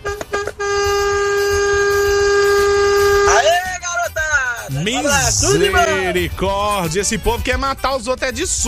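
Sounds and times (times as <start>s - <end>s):
truck air horn blasts: 0.0s - 3.6s
speech: 5.0s - 8.6s.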